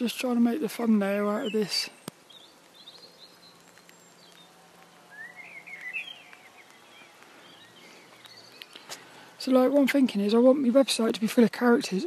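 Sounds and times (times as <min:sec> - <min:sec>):
speech: 0:00.0 - 0:02.0, 0:09.5 - 0:12.0
bird chirping: 0:00.0 - 0:10.2
light steady rain falling outdoors in a graveyard: 0:00.0 - 0:12.0
faint scattered rain drips: 0:02.0 - 0:09.5.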